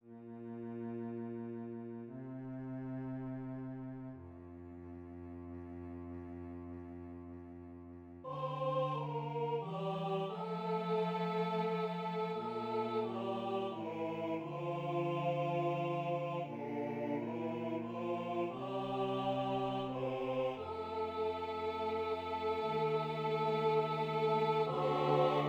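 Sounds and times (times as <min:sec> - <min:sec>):
cello: 0:00.0 - 0:25.4
choir singing: 0:08.2 - 0:25.4.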